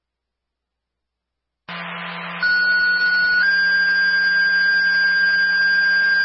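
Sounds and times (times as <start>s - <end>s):
static hiss: 1.7s - 5.2s
fire department radio dispatch alert tones: 1.7s - 6.2s.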